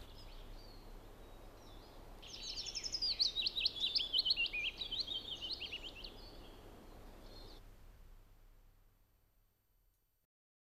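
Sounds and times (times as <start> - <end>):
Willow Warbler song of quick slurred notes: 0.0 - 7.6.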